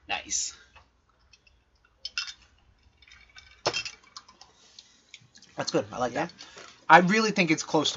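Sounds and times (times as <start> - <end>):
speech: 0.3 - 0.6, 5.6 - 7.9
glasses clinking together in a toast: 2.1 - 4.3.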